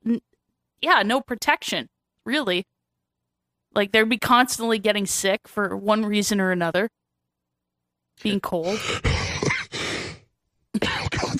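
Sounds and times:
speech: 0.1 - 2.7, 3.7 - 7.0, 8.2 - 9.1, 10.8 - 11.1
person coughing: 8.6 - 10.0, 10.8 - 11.3.

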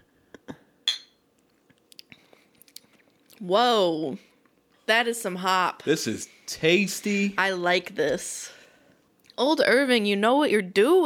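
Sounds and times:
two glasses of amber beer clinking in a toast: 0.9 - 1.2
speech: 3.4 - 4.3, 4.9 - 8.6, 9.4 - 11.0.

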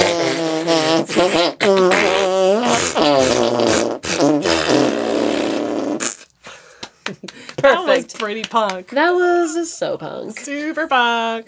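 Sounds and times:
arm fart noises: 0.0 - 6.4
speech: 1.2 - 1.8, 8.2 - 11.4
laughter: 6.9 - 8.2.

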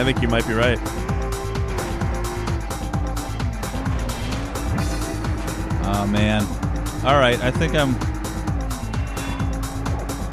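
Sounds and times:
speech: 0.0 - 1.1, 5.9 - 8.1
video game racing car engine roaring: 0.0 - 10.3.

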